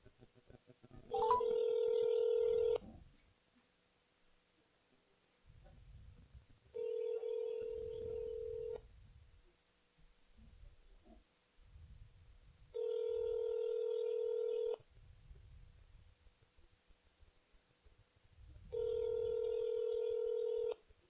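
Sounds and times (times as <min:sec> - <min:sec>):
ringback tone of an outgoing telephone call: 0:01.2 - 0:02.8, 0:06.8 - 0:08.8, 0:12.8 - 0:14.8, 0:18.7 - 0:20.8.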